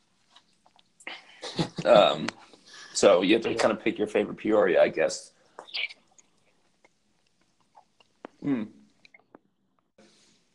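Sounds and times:
wet chewing of chimichangas: 0:00.2 - 0:01.1, 0:05.6 - 0:09.9
speech: 0:01.8 - 0:02.4, 0:03.0 - 0:05.4, 0:08.5 - 0:08.8.

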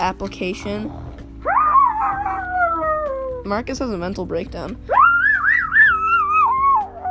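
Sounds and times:
speech: 0:00.0 - 0:01.1, 0:03.4 - 0:05.0
man's voice imitating a dog's howl: 0:01.4 - 0:03.4, 0:04.9 - 0:07.0.

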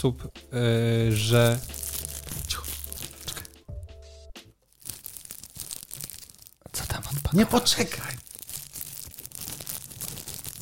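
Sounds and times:
speech: 0:00.0 - 0:01.8, 0:07.3 - 0:08.2
plastic foil being torn open: 0:01.0 - 0:03.6, 0:04.7 - 0:10.5.

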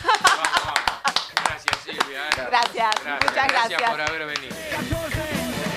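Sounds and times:
light laughter: 0:00.0 - 0:04.0
small group clapping by hand: 0:00.0 - 0:05.6
speech: 0:02.6 - 0:05.0.

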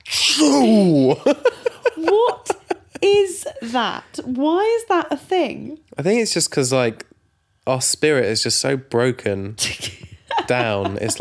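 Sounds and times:
very loud exaggerated dad-style sneeze: 0:00.0 - 0:00.8
speech: 0:00.6 - 0:01.5, 0:03.6 - 0:07.1, 0:07.7 - 0:11.1
laughter: 0:00.8 - 0:03.4, 0:09.8 - 0:11.1.

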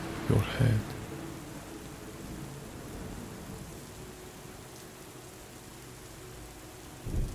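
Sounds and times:
steady rain from a storm: 0:00.0 - 0:07.3
speech: 0:00.3 - 0:00.9
distant rolling thunder from a storm: 0:07.0 - 0:07.3.

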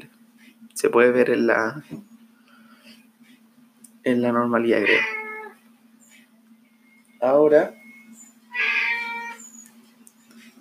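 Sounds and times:
low steady hum: 0:00.0 - 0:10.5
speech: 0:00.8 - 0:02.1, 0:04.0 - 0:05.2, 0:07.2 - 0:07.8
cat meowing: 0:04.8 - 0:05.6, 0:08.5 - 0:09.5.

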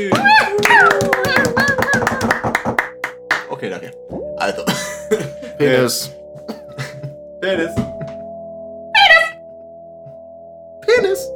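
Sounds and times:
laughter: 0:00.0 - 0:02.7, 0:06.4 - 0:07.2
small group clapping: 0:00.0 - 0:03.7
speech: 0:03.7 - 0:05.0, 0:05.6 - 0:06.2, 0:07.4 - 0:07.9.

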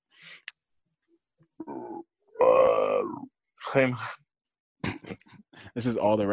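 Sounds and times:
speech: 0:01.6 - 0:02.1, 0:03.0 - 0:04.2, 0:05.1 - 0:06.3
person imitating a whale call with low groaning moans: 0:01.6 - 0:03.3.

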